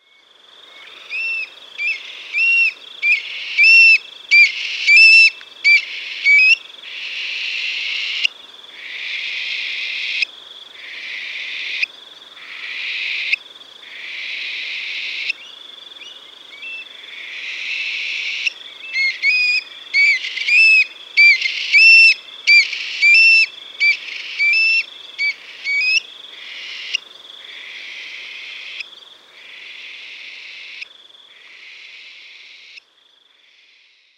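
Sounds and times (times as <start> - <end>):
stone-curlew calling: 1.1 - 6.6, 18.4 - 26.0.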